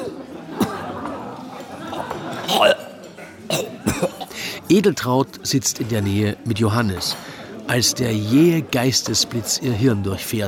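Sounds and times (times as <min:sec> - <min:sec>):
laughter: 0:00.0 - 0:04.6
murmur of voices: 0:00.0 - 0:10.4
man on a corner bench spitting out seasoning and coughing: 0:02.3 - 0:04.4
speech: 0:02.5 - 0:02.8, 0:04.7 - 0:10.4.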